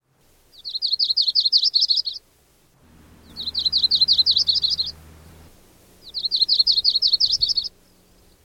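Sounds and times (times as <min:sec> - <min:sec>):
yellow-rumped warbler song trilling: 0:00.6 - 0:02.2, 0:03.2 - 0:08.4
low rumbling noise: 0:02.4 - 0:08.4.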